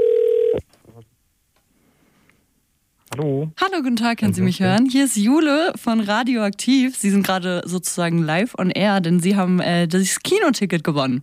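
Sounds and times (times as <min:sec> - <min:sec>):
steady buzzing telephone tone as a call is placed: 0:00.0 - 0:00.6
speech: 0:03.2 - 0:11.2.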